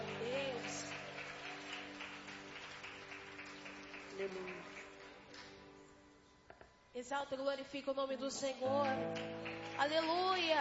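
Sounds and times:
church audience applauding to welcome the worship group: 0:00.0 - 0:05.6, 0:08.6 - 0:10.6
speech: 0:04.2 - 0:04.8, 0:07.0 - 0:10.6.

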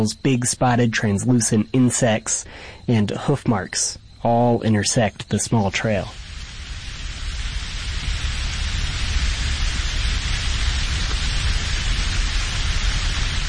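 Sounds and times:
speech: 0:00.0 - 0:06.2
heavy rain falling: 0:06.1 - 0:13.4.

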